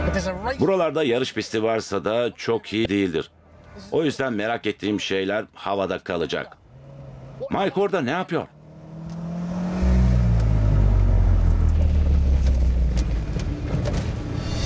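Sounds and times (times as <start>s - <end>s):
speech: 0.1s - 6.6s, 7.4s - 8.5s
go-kart engine at a go-kart track: 6.5s - 14.5s.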